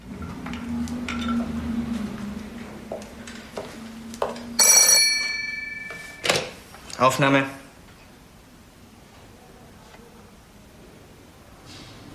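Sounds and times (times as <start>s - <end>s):
low room hum: 0.0s - 12.1s
telephone bell ringing: 4.6s - 6.3s
speech: 7.0s - 7.6s.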